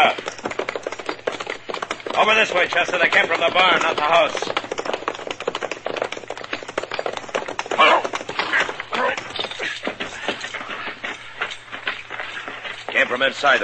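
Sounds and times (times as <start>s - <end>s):
hoofbeats of a ridden horse galloping into a river bottom: 0.0s - 13.6s
speech: 2.2s - 4.6s, 13.2s - 13.6s.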